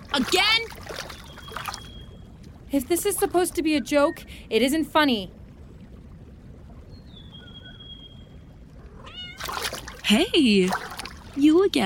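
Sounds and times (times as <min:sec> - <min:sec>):
low rumbling background: 0:00.0 - 0:11.8
speech: 0:00.2 - 0:00.8, 0:02.7 - 0:05.4, 0:10.1 - 0:11.8
cat meowing: 0:08.9 - 0:09.8.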